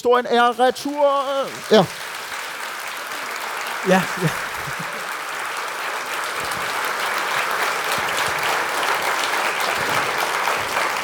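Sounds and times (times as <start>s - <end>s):
speech: 0.0s - 2.1s, 3.8s - 4.9s
audience applause: 0.4s - 11.0s
laughter: 1.1s - 2.1s, 3.2s - 11.0s.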